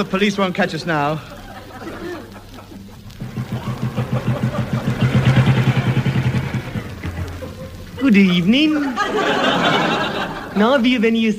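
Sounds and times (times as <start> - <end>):
speech: 0.0 - 1.4, 8.0 - 11.3
laughter: 1.2 - 11.0
motorbike engine approaching: 3.2 - 8.0.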